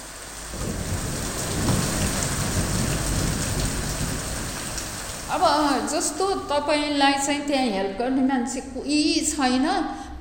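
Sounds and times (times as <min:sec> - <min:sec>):
heavy rain pouring onto a leaking roof: 0:00.0 - 0:06.1
speech: 0:05.4 - 0:10.1.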